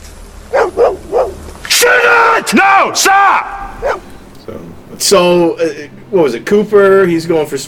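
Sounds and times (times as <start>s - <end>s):
dog barking: 0.5s - 1.4s, 3.7s - 4.1s
speech: 2.4s - 7.6s.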